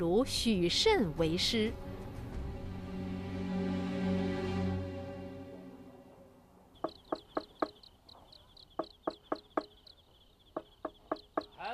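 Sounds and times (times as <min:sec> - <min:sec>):
speech: 0:00.0 - 0:01.9
sustained musical tone: 0:01.0 - 0:06.6
hurried knocking on a wooden door late at night: 0:06.8 - 0:07.8, 0:08.8 - 0:09.8, 0:10.6 - 0:11.6.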